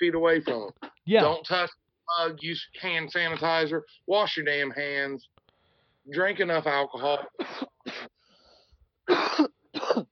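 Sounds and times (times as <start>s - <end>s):
speech: 0.0s - 5.3s, 6.1s - 8.1s
harsh broadband coughs: 7.2s - 8.2s, 9.0s - 10.1s.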